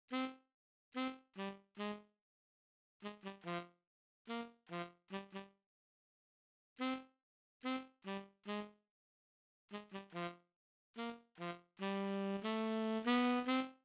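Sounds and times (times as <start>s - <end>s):
tenor saxophone: 0.1s - 0.4s, 1.0s - 2.1s, 3.0s - 5.6s, 6.8s - 8.8s, 9.7s - 10.4s, 11.0s - 13.8s.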